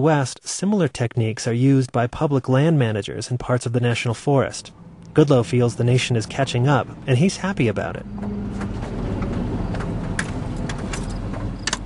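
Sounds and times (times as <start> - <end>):
speech: 0.0 - 8.9
old work truck engine rumbling while driving at dusk: 3.5 - 11.8
metallic rattles and clicks inside an old work truck: 8.2 - 11.8.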